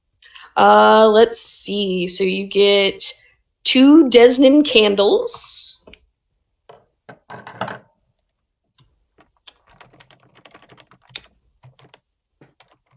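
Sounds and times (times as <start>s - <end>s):
speech: 0.6s - 5.8s
typing notes on a computer keyboard: 9.2s - 12.9s.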